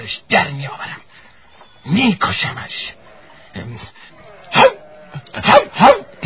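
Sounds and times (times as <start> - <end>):
speech: 0.0 - 1.0, 1.8 - 3.0, 3.6 - 6.2
person's voice imitating a dog barking: 4.5 - 6.2.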